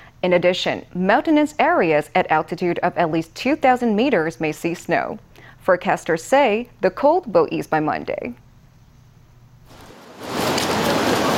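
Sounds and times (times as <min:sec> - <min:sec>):
speech: 0:00.2 - 0:08.4
steady rain from an approaching front in northern Taiwan: 0:09.7 - 0:11.3.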